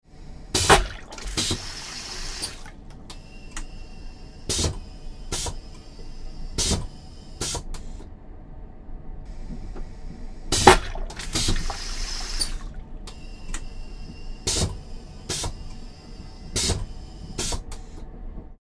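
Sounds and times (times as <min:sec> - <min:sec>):
air hiss: 0:00.2 - 0:07.8, 0:09.3 - 0:18.0
vacuum toilet flushing in an aircraft or train: 0:00.5 - 0:03.1, 0:10.5 - 0:13.0
suction sounds: 0:00.6 - 0:02.8, 0:10.6 - 0:12.8.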